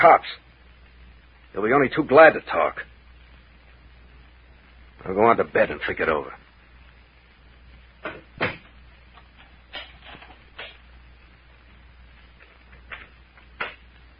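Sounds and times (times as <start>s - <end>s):
speech: 0.0s - 0.4s, 1.5s - 2.9s, 5.0s - 6.4s
faint hum: 0.0s - 14.1s
two doors thudding shut: 8.0s - 8.7s.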